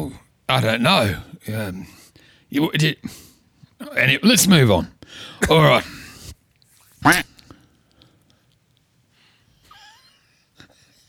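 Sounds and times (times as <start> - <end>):
speech: 0.0 - 6.0, 7.0 - 7.3
duck quacking: 7.0 - 7.3.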